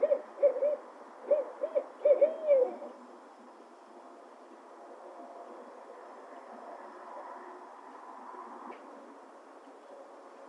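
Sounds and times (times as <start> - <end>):
owl hooting: 0.0 - 3.0
steady background hiss: 0.0 - 10.4.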